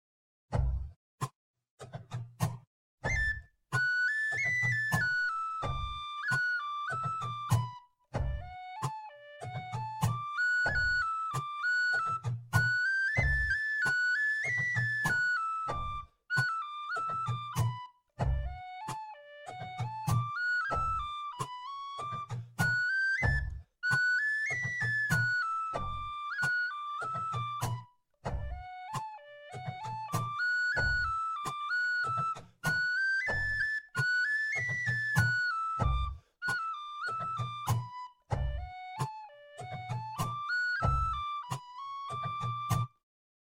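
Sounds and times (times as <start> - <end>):
slow percussion: 3.0 - 33.7, 34.5 - 42.9
whistle: 3.0 - 43.0.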